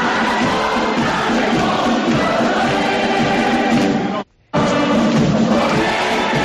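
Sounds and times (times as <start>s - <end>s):
large crowd singing the festival hymn in the streets: 0.0s - 6.4s.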